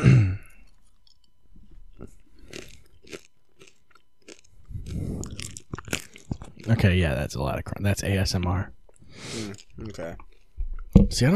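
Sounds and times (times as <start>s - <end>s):
person chewing crunchy snacks from a bag: 0.4s - 6.8s, 8.9s - 10.6s
speech: 6.7s - 10.3s, 11.0s - 11.3s.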